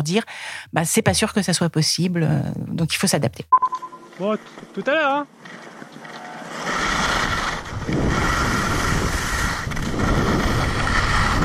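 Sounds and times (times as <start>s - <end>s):
speech: 0.0s - 5.6s
skiing snow and wind rush on a red ski run at Combloux in March: 5.7s - 11.4s.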